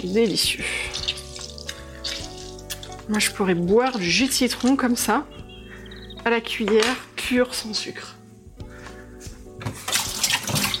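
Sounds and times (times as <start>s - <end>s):
speech: 0.0s - 1.1s, 3.1s - 5.4s, 6.2s - 8.2s
running tap water splashing over hands being rinsed: 0.0s - 5.1s, 9.6s - 10.7s.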